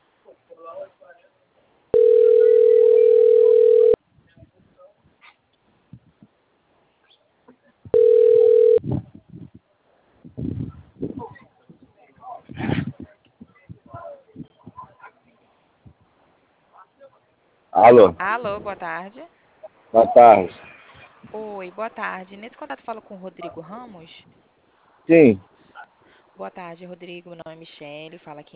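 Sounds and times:
telephone dial tone on an outgoing call: 0:02.0 - 0:04.0, 0:07.9 - 0:08.8
speech: 0:17.9 - 0:19.3, 0:19.9 - 0:20.6, 0:21.3 - 0:24.4, 0:25.1 - 0:25.5, 0:26.4 - 0:28.5.

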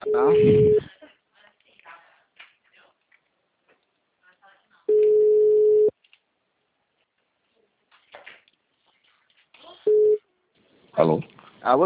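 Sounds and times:
telephone busy tone after a dropped call: 0:00.0 - 0:00.9, 0:04.9 - 0:05.9, 0:09.9 - 0:10.2
speech: 0:00.1 - 0:00.9, 0:11.1 - 0:11.8.

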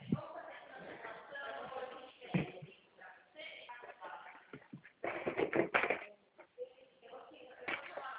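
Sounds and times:
faint voices murmuring: 0:00.0 - 0:08.1
rummaging clicks, taps and clatters while getting a pen: 0:04.5 - 0:06.1.

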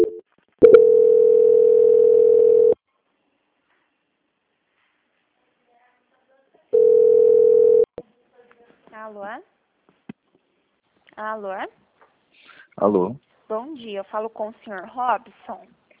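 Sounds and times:
telephone line buzzing tones during a bank call transfer: 0:00.0 - 0:02.8, 0:06.8 - 0:07.9
speech: 0:09.0 - 0:09.6, 0:11.2 - 0:11.8, 0:12.8 - 0:15.8.

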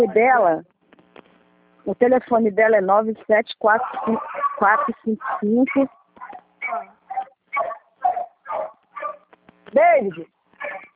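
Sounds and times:
speech: 0:00.0 - 0:00.8, 0:01.8 - 0:06.0, 0:09.7 - 0:10.9
dog barking: 0:03.8 - 0:09.3, 0:10.6 - 0:10.9.

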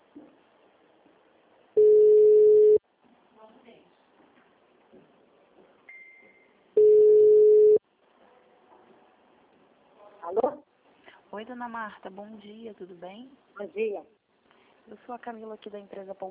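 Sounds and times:
ringback tone of an outgoing telephone call: 0:01.8 - 0:02.8, 0:06.8 - 0:07.8
speech: 0:11.4 - 0:14.2, 0:14.9 - 0:16.2.

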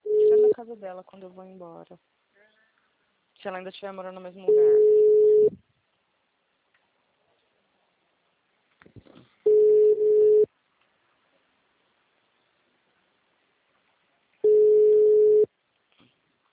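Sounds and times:
telephone busy signal: 0:00.0 - 0:00.6, 0:04.5 - 0:05.5, 0:09.5 - 0:10.5, 0:14.4 - 0:15.5
speech: 0:00.6 - 0:02.2, 0:03.4 - 0:05.7.

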